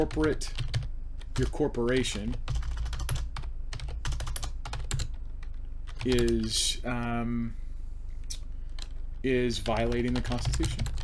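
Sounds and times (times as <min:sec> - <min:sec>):
speech: 0:00.0 - 0:00.7, 0:01.4 - 0:02.6, 0:06.0 - 0:07.6, 0:09.2 - 0:11.0
rapid typing on a computer keyboard: 0:00.0 - 0:06.5, 0:09.6 - 0:11.0.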